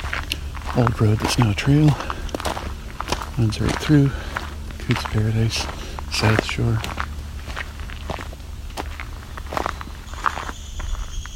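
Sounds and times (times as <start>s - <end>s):
footsteps crunching along a trail: 0.0s - 11.3s
speech: 0.8s - 2.1s, 3.4s - 4.2s, 4.9s - 7.0s
faint high bird notes: 9.1s - 11.3s
downy woodpecker giving a sharp short call: 9.3s - 11.3s.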